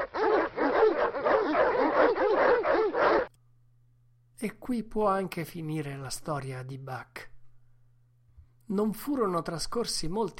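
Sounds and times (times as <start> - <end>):
chorus of wolves barking and yipping: 0.0 - 3.3
speech: 4.4 - 7.3, 8.7 - 10.3.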